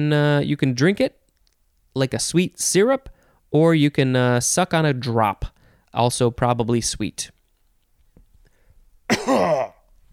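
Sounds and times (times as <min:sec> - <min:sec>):
speech: 0:00.0 - 0:01.2, 0:02.0 - 0:07.4, 0:09.2 - 0:09.8
harsh raspy throat-clearing cough: 0:09.1 - 0:09.8.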